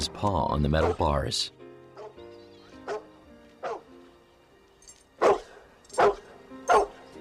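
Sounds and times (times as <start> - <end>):
speech: 0.0 - 1.6
dog barking: 0.8 - 1.1, 2.0 - 2.2, 2.8 - 3.9, 5.2 - 7.0.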